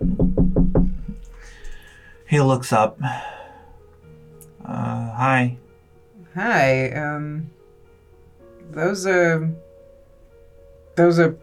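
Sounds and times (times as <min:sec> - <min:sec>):
knocks on a wooden door: 0:00.0 - 0:01.2
faint room noise: 0:00.0 - 0:11.4
speech: 0:02.3 - 0:03.4, 0:04.7 - 0:05.6, 0:06.4 - 0:07.6, 0:08.7 - 0:09.6, 0:11.0 - 0:11.4.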